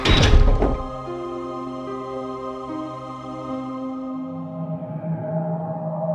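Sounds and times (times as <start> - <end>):
heavy iron door slamming shut: 0.0 - 1.1.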